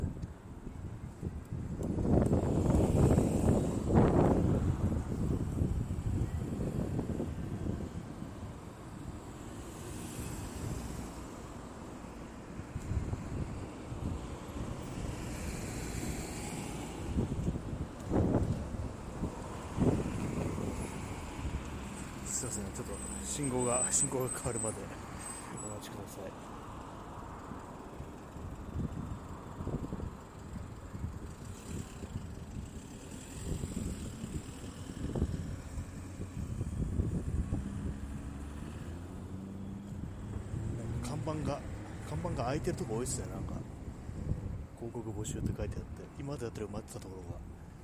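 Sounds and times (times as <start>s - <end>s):
wind buffeting the microphone: 0.0s - 8.6s, 12.7s - 21.9s, 28.5s - 38.2s, 43.3s - 46.0s
road traffic roar beside a six-lane road: 0.0s - 47.8s
speech: 23.4s - 25.0s, 26.1s - 26.5s, 42.3s - 43.4s, 45.2s - 47.6s.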